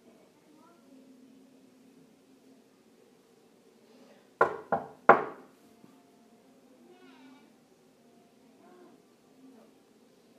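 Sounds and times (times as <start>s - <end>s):
heavy knocks on a wooden door: 4.4s - 5.4s.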